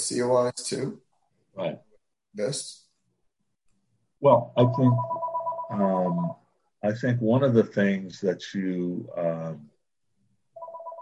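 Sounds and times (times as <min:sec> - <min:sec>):
speech: 0:00.1 - 0:01.0, 0:01.6 - 0:02.8, 0:04.2 - 0:09.7
electronic phone ringtone: 0:04.6 - 0:06.4, 0:10.6 - 0:11.0.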